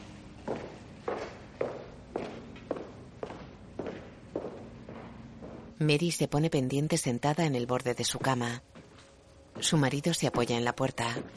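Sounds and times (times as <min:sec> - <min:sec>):
footsteps of a person walking out of an office: 0:00.4 - 0:05.8, 0:08.1 - 0:11.3
speech: 0:05.8 - 0:08.8, 0:09.6 - 0:11.3.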